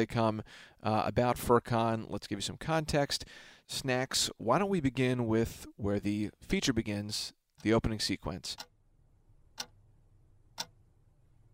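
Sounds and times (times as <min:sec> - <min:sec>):
speech: 0:00.0 - 0:08.7
wall clock ticking: 0:08.5 - 0:08.8, 0:09.6 - 0:09.8, 0:10.5 - 0:10.8.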